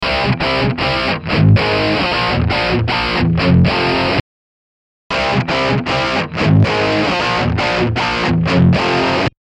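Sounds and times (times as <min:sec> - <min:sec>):
electric guitar through Mullard long plate low bias valves: 0:00.0 - 0:04.2, 0:05.1 - 0:09.4.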